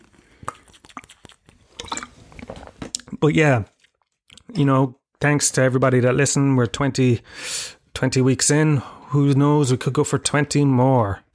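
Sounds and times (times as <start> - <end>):
person sipping water: 0.0 - 3.2
speech: 3.2 - 3.7, 4.6 - 11.2.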